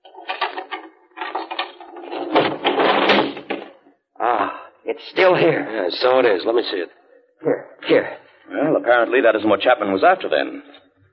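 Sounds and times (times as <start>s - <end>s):
desk being opened with mechanical rattling and scraping: 0.1s - 3.8s
speech: 4.9s - 10.8s.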